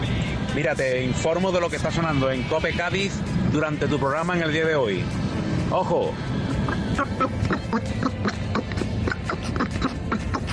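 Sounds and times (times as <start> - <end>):
speech: 0.6 - 8.3
distorted quacking duck-like voice on a radio broadcast in Cádiz, Spain: 6.5 - 10.5.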